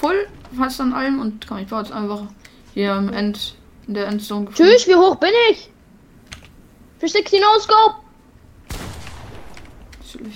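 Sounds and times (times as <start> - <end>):
speech: 0.0 - 5.7, 7.0 - 8.0
video game gunfire: 8.7 - 10.0.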